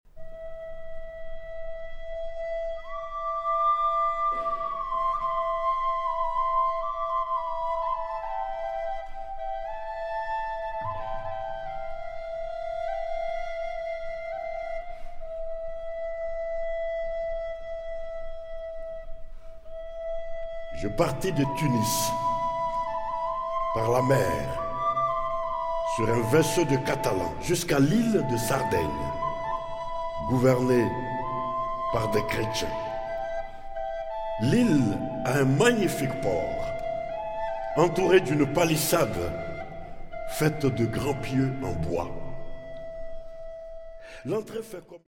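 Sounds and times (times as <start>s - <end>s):
double flute improvisation: 0.1s - 45.0s
person narrating: 20.8s - 22.4s, 23.8s - 24.8s, 25.9s - 29.4s, 30.2s - 33.2s, 34.4s - 36.9s, 37.7s - 42.5s, 44.2s - 45.0s.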